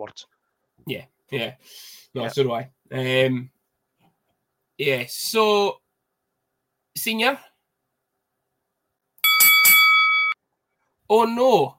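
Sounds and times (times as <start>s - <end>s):
speech: 0.0s - 3.6s, 4.8s - 5.8s, 7.0s - 7.5s, 11.1s - 11.7s
bright bell ringing: 9.2s - 10.4s.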